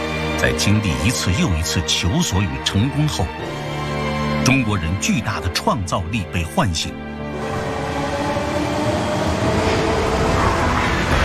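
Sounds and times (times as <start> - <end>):
speech: 0.4 - 3.7, 4.4 - 7.6
Fuxing high-speed bullet train on the Beijing–Zhangjiakou high-speed railway in China: 6.9 - 11.2.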